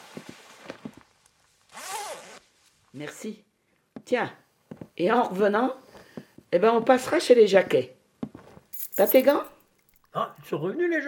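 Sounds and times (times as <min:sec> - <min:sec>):
coat zipper pulled up: 0:01.7 - 0:02.5
speech: 0:03.0 - 0:04.4, 0:05.0 - 0:05.8, 0:06.5 - 0:08.0, 0:09.0 - 0:11.0.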